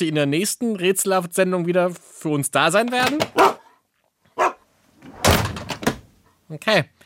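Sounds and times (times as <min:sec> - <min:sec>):
speech: 0:00.0 - 0:03.6, 0:06.5 - 0:07.0
dog barking: 0:03.3 - 0:03.8, 0:04.4 - 0:04.6.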